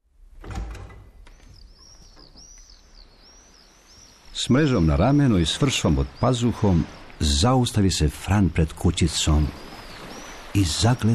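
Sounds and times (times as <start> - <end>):
door of a fisherman's small hut opening with a thump: 0.4 - 2.4
speech: 4.4 - 9.6, 10.6 - 11.1.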